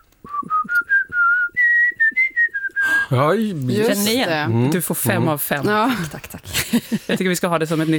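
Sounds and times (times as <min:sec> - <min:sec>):
person whistling a melody: 0:00.0 - 0:03.4
laughter: 0:02.8 - 0:07.9
speech: 0:03.1 - 0:07.9.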